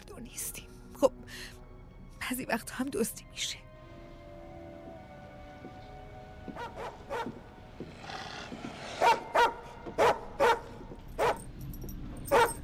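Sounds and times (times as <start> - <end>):
speech: 0.2 - 1.6, 2.3 - 3.6
neighbour's dog barking: 6.5 - 7.4, 9.0 - 11.5, 12.3 - 12.6.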